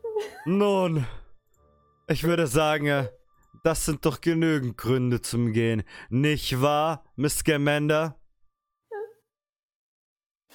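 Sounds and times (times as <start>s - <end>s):
woman starting to cry: 0.0s - 0.5s, 8.9s - 9.2s
speech: 0.2s - 1.2s, 2.1s - 8.2s.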